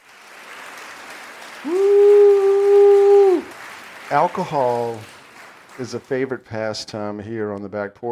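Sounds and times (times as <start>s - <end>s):
round of applause: 0.0s - 6.8s
speech: 1.6s - 1.9s, 4.1s - 5.1s, 5.8s - 8.1s
loud sustained whoop-like tone: 1.6s - 3.5s.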